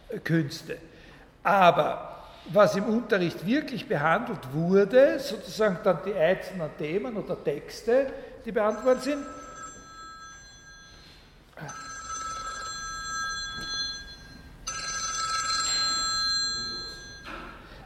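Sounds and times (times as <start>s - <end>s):
soft steady hum: 0.0s - 17.8s
speech: 0.1s - 9.4s
telephone ringing with electronic ringtone during a university lecture: 8.6s - 17.5s.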